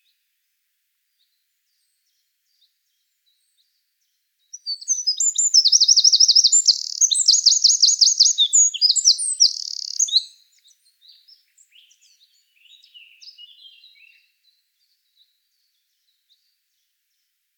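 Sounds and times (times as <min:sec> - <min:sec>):
Eurasian wren Troglodytes troglodytes song: 0:04.5 - 0:14.4
faint scattered chips: 0:04.7 - 0:10.3.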